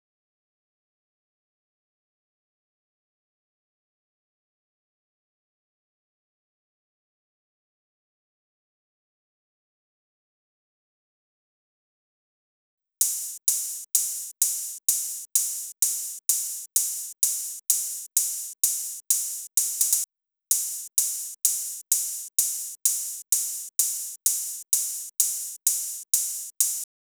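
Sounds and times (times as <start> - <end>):
drum loop overheads: 13.0 - 26.9.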